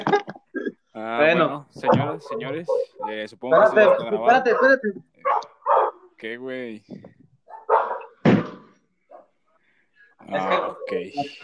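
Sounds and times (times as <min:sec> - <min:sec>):
speech: 0:01.0 - 0:05.1, 0:06.2 - 0:07.1, 0:10.3 - 0:11.4
dog barking: 0:01.8 - 0:06.1, 0:07.5 - 0:09.3
dog yelping softly: 0:01.8 - 0:06.1, 0:07.5 - 0:08.2.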